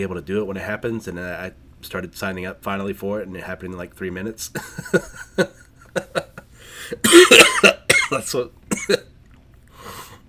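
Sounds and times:
speech: 0.0s - 6.3s, 6.9s - 9.1s
person coughing in sharp hacking bursts: 6.0s - 9.1s.

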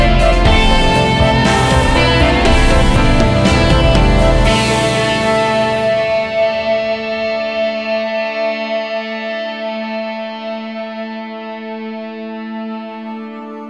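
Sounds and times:
heavily distorted chord ending a song: 0.0s - 9.3s.

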